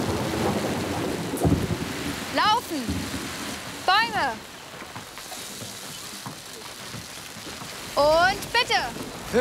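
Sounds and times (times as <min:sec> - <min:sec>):
low rumbling thunder: 0:00.0 - 0:04.5
steady rain hissing in a thunderstorm: 0:00.0 - 0:09.4
speech: 0:08.0 - 0:09.4.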